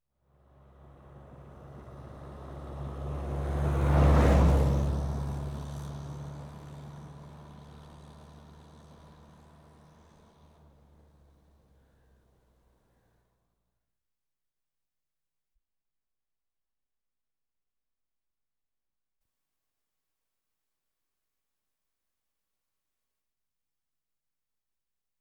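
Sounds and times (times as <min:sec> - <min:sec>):
Landrover Safari diesel approaching: 0:00.4 - 0:12.8.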